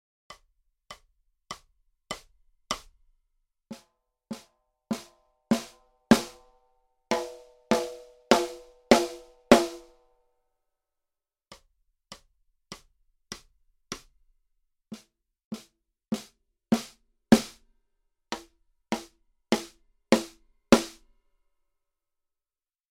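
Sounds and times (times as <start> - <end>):
snare drum played with hickory sticks: 0.3 - 3.0, 3.7 - 6.5, 7.1 - 10.0, 14.9 - 17.6, 18.3 - 21.0.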